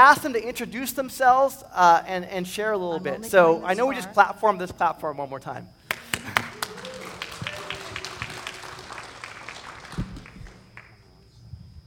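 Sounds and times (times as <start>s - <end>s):
speech: 0.0s - 6.6s
small audience applauding: 5.9s - 11.1s.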